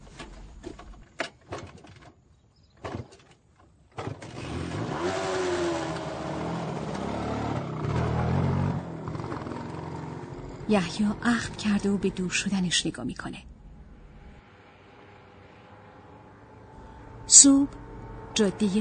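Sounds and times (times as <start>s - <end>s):
stalled motorcycle engine restarting and revving: 3.9s - 18.7s
speech: 10.7s - 13.5s, 17.4s - 18.7s.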